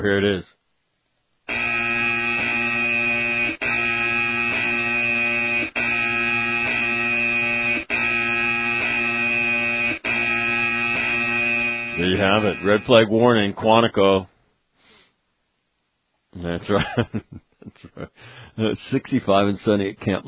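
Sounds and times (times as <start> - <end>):
speech: 0.0 - 0.6, 12.0 - 14.3, 16.4 - 20.2
loud harsh electronic buzzer: 1.5 - 13.1
laughter: 16.6 - 18.2.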